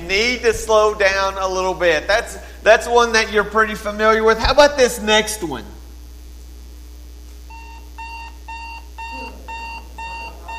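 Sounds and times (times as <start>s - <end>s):
speech: 0.1s - 5.8s
electronic alarm clock beeping: 7.5s - 10.5s.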